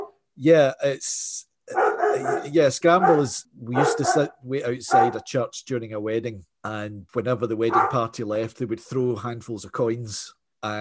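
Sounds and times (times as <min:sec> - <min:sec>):
speech: 0:00.4 - 0:10.7
pet dog barking: 0:01.7 - 0:05.3, 0:07.7 - 0:08.1.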